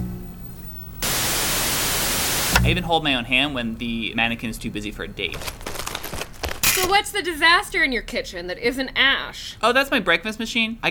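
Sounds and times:
loud broadband TV static hissing: 0.0 - 3.1
low hum: 0.0 - 3.4
speech: 2.6 - 5.6, 6.8 - 10.8.

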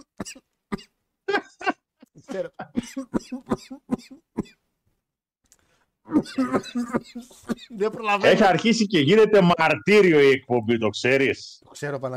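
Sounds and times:
person coughing: 0.1 - 0.9, 2.3 - 4.6, 6.1 - 8.0
speech: 0.2 - 0.9, 2.3 - 4.6, 6.1 - 12.1.

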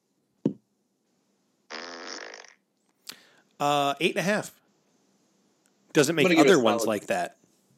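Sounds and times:
fart noises: 1.7 - 2.7
speech: 3.6 - 4.6, 6.0 - 7.4.

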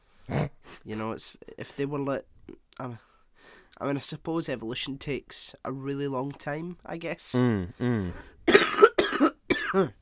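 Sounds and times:
speech: 0.3 - 8.4, 9.2 - 10.0
throaty sound: 7.3 - 9.9
person coughing harshly: 7.9 - 10.0.

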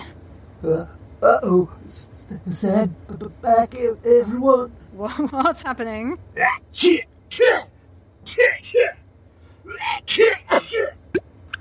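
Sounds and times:
speech: 0.6 - 7.7, 8.3 - 9.0, 9.7 - 11.0
person sneezing: 9.8 - 11.2.

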